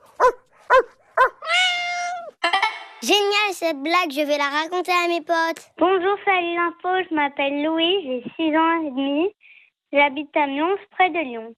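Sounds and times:
dog barking: 0:00.0 - 0:01.4
dog with long drawn-out high-pitched cry: 0:00.2 - 0:02.4
speech: 0:03.0 - 0:11.5.

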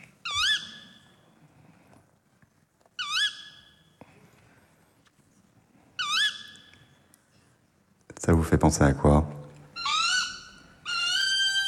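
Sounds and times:
tawny owl hooting: 0:00.2 - 0:01.1, 0:03.0 - 0:03.8, 0:06.0 - 0:06.9, 0:09.7 - 0:11.6
speech: 0:08.2 - 0:09.4.

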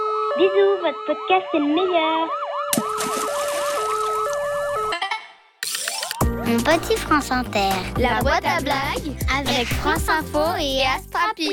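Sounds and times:
two-tone ambulance siren with wailing sweep: 0:00.0 - 0:05.0
speech: 0:00.4 - 0:03.2, 0:06.6 - 0:11.5.

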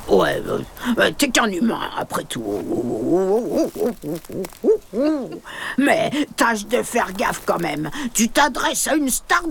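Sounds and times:
speech: 0:00.2 - 0:09.4
owl with small ear tufts hooting: 0:02.9 - 0:05.5.

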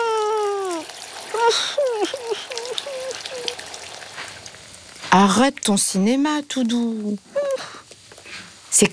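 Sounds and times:
high drawn-out whining cry: 0:00.0 - 0:03.6
wavering yelps and whimpers: 0:00.0 - 0:03.6
shower water running: 0:00.0 - 0:08.9
speech: 0:01.5 - 0:02.2, 0:05.2 - 0:07.4.

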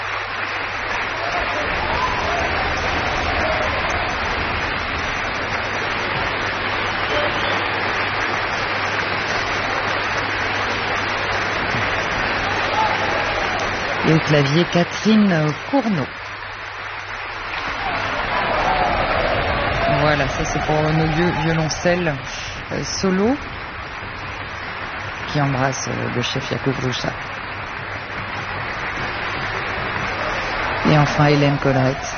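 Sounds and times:
concert audience applauding the orchestra: 0:00.0 - 0:32.1
speech: 0:14.2 - 0:16.2, 0:20.2 - 0:23.5, 0:25.3 - 0:27.3, 0:30.9 - 0:32.1.

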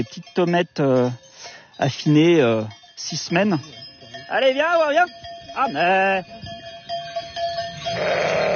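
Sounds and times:
speech: 0:00.0 - 0:01.2, 0:01.8 - 0:06.4, 0:07.9 - 0:08.5
faint steady ringing tone: 0:00.0 - 0:08.5
ewe bleating with a wavering nasal call: 0:07.9 - 0:08.5.

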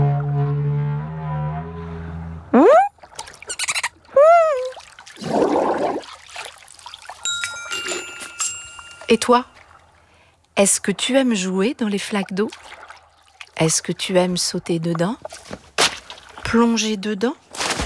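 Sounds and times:
blue whale singing: 0:00.0 - 0:02.9, 0:03.5 - 0:06.0
bubbly watery noise: 0:02.5 - 0:06.3
faint tinkling chimes: 0:07.2 - 0:09.8
speech: 0:09.1 - 0:09.5, 0:10.6 - 0:12.8, 0:13.6 - 0:15.6, 0:16.5 - 0:17.4.

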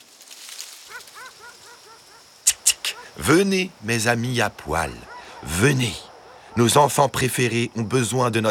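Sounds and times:
dog barking: 0:00.9 - 0:03.2, 0:04.7 - 0:06.9
speech: 0:00.9 - 0:08.4.

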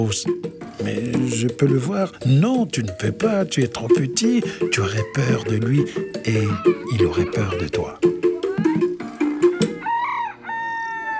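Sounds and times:
speech: 0:00.0 - 0:08.1
old rooster clucking in choppy bursts: 0:00.5 - 0:02.2, 0:03.5 - 0:11.1
laughter: 0:00.8 - 0:02.1, 0:04.0 - 0:09.8
old rooster crowing: 0:04.5 - 0:11.1.

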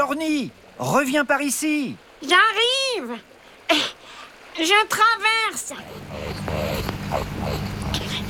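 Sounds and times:
speech: 0:00.1 - 0:03.9, 0:04.6 - 0:07.7
rakali Australian water rat growling on a riverbank: 0:05.5 - 0:08.2.

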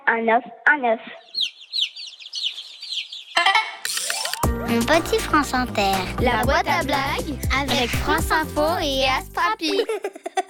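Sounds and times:
speech: 0:00.1 - 0:01.3, 0:04.7 - 0:10.3
hen clucking and squawking: 0:01.2 - 0:04.0
laughter: 0:09.6 - 0:10.4.

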